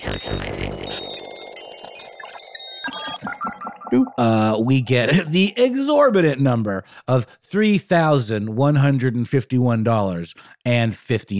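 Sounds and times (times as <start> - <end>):
bright electronic calculator beeps and chiming tones: 0.0 - 5.4
speech: 0.2 - 0.6, 3.9 - 11.3.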